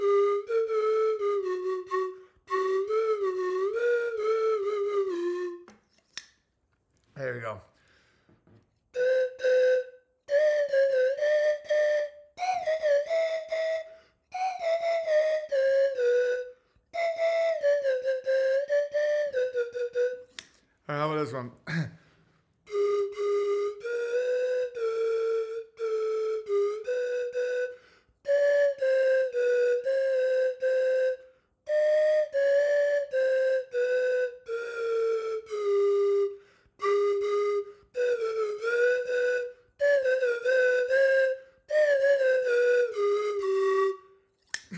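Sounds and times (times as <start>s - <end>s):
slide whistle playing a wavering tune: 0.0s - 6.3s, 8.9s - 20.6s, 22.6s - 44.7s
speech: 7.5s - 7.7s.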